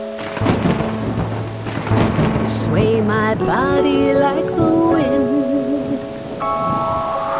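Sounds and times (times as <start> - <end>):
rainy hiss: 0.0 - 7.3
thunder rumbling: 0.0 - 7.3.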